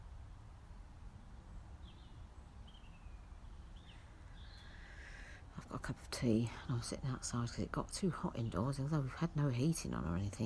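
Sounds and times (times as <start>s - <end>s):
faint birds chirping at dusk: 0.0s - 10.4s
steady low outdoor rumble at night: 0.0s - 10.4s
speech: 5.7s - 10.4s.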